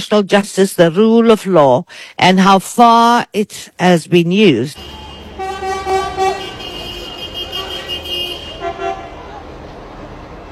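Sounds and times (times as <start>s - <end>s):
speech: 0.0s - 5.0s
car horns honking in busy street traffic: 4.8s - 9.4s.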